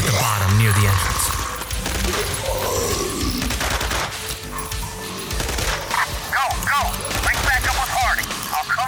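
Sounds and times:
rifle gunfire during a retreat in a fight at an ice station: 0:00.0 - 0:08.7
speech: 0:00.7 - 0:01.2.

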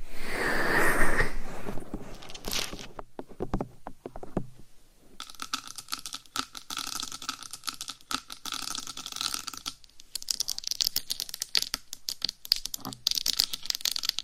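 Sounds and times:
scratching and rubbing against a microphone: 0:00.3 - 0:05.2
fingertips tapping and scraping a microphone: 0:00.7 - 0:14.2.

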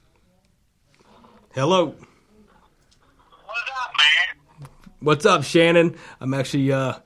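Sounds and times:
speech: 0:01.6 - 0:02.1, 0:05.0 - 0:07.0
tinny voice over phone speakerphone: 0:03.3 - 0:04.4.

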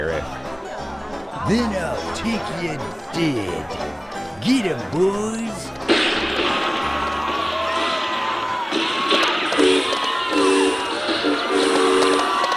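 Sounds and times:
laughter: 0:00.2 - 0:08.1
speech: 0:01.5 - 0:06.6
train whistle blasts: 0:09.4 - 0:12.5.

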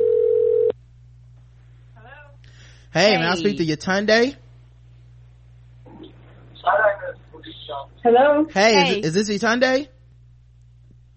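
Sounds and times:
telephone ringing tone during outgoing call: 0:00.0 - 0:00.7
faint low electrical hum on the telephone line: 0:00.0 - 0:11.1
speech: 0:02.9 - 0:04.4, 0:06.6 - 0:10.0.

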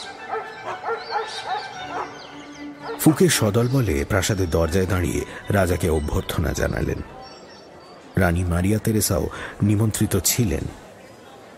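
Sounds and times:
pack of pet dogs barking and yipping at a crowded palace reception: 0:00.0 - 0:03.2
speech: 0:03.0 - 0:07.2, 0:08.2 - 0:10.8.

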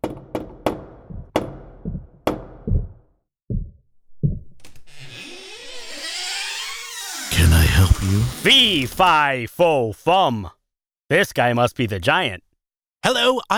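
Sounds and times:
loud sharp knocking on a door: 0:00.0 - 0:04.6
creaking: 0:04.4 - 0:09.2
rising whoosh of noise: 0:05.3 - 0:09.2
speech: 0:08.0 - 0:12.4, 0:13.0 - 0:13.5.

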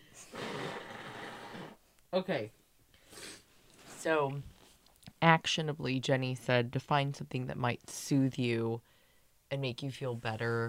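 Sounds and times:
person blowing their nose: 0:00.2 - 0:01.8, 0:03.0 - 0:03.5
speech: 0:02.2 - 0:02.6, 0:04.0 - 0:04.5, 0:05.2 - 0:08.9, 0:09.5 - 0:10.6.

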